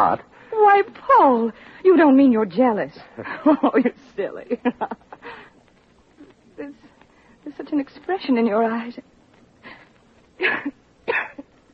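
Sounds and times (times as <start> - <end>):
speech: 0.0 - 5.4, 7.5 - 9.1, 10.4 - 11.4
woman coughing: 10.4 - 11.5.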